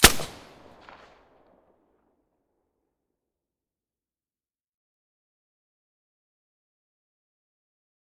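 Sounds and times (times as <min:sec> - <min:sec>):
suppressed FN2000 rifle gunshot: 0:00.0 - 0:01.2.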